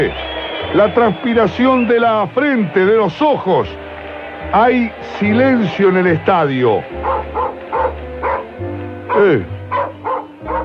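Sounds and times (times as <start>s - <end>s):
speech: 0.0s - 3.8s, 4.5s - 7.4s, 9.2s - 9.9s
dog barking in sharp yips: 7.0s - 8.5s, 9.1s - 10.6s.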